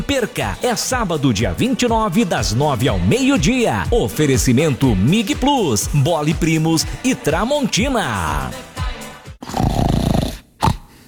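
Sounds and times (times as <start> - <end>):
speech: 0.1 - 8.7
person snoring with snorts and a rattling inhale: 8.2 - 11.0.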